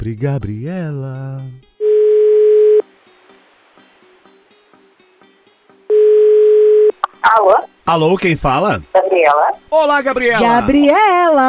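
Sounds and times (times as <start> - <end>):
speech: 0.0 - 1.7, 7.2 - 11.4
telephone ringback tone while placing a call: 1.8 - 2.8, 5.9 - 7.0.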